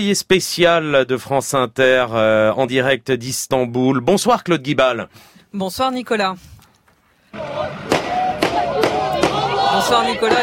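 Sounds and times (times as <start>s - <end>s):
speech: 0.0s - 6.6s, 9.7s - 10.4s
crowd of yes-side supporters chanting outdoors at night in Sütlüce Istanbul Turkey: 7.3s - 10.4s
gunshots fired into the air: 7.4s - 10.4s.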